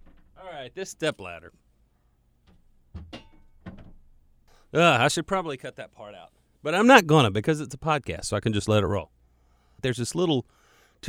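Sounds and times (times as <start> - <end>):
speech: 0.6 - 1.6, 4.7 - 9.2, 9.8 - 11.0
knocks and bumps: 2.4 - 4.2
studio door swinging shut with a dull thunk: 2.9 - 4.1.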